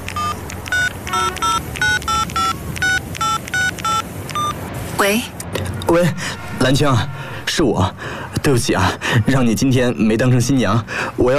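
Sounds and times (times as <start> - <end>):
touch-tone beeps of a telephone being dialed: 0.1 - 4.6
speech: 5.0 - 5.3, 5.9 - 11.3.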